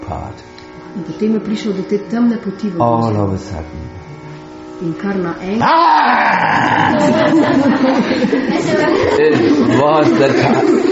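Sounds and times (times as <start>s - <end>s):
speech: 0.1s - 4.1s, 4.8s - 10.9s
person imitating a tiger's roar: 5.6s - 7.3s
laughter: 6.3s - 10.9s.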